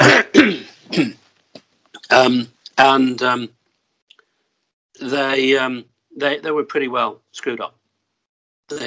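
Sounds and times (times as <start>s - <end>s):
rasping voiced throat clearing: 0.0s - 1.2s
sharp hacking coughs: 0.0s - 1.2s
speech: 1.0s - 1.2s, 2.1s - 3.6s, 5.0s - 7.8s, 8.7s - 8.8s.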